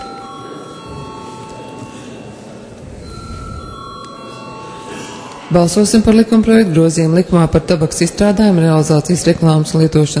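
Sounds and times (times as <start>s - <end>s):
parliament voting bell ringing to call a vote: 0.0s - 6.8s
low murmur: 0.0s - 10.1s
speech: 5.5s - 10.1s.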